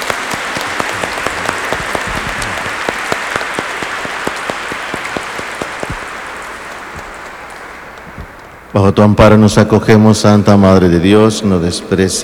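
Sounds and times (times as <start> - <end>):
church service audience applauding: 0.0 - 8.6
speech: 8.8 - 12.2.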